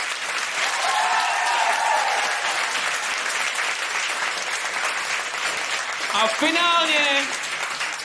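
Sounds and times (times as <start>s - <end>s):
crowd at a live event applauding: 0.0s - 8.0s
faint cheer or whistle: 0.6s - 2.6s
speech: 6.2s - 7.5s.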